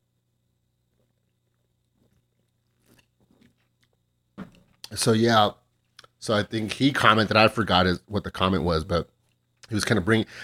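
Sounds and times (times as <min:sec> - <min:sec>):
faint steady hum: 0:00.0 - 0:10.4
person sipping a drink: 0:01.9 - 0:04.0
speech: 0:05.0 - 0:05.6, 0:06.2 - 0:09.1, 0:09.7 - 0:10.4.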